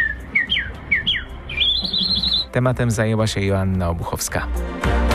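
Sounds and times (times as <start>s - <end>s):
person at a bird-imitation contest whistling bird-like trills: 0.0s - 2.5s
speech: 2.6s - 5.0s.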